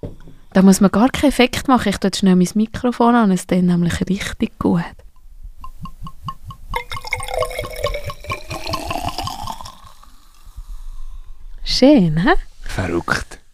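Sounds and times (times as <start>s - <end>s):
speech: 0.5s - 5.0s, 11.7s - 13.4s
liquid glugging into a bottle: 5.6s - 10.5s.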